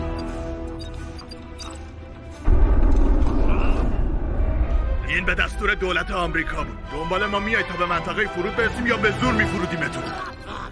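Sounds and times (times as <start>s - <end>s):
warning shot boom fired at a spacecraft: 2.4s - 6.3s
sustained heavy rumble: 2.4s - 6.9s
speech: 5.2s - 10.4s.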